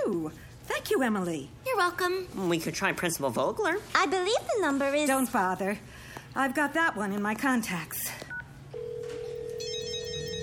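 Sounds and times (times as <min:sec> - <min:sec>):
speech: 0:00.1 - 0:08.2
mobile phone ringing inside a drawer: 0:08.7 - 0:10.4.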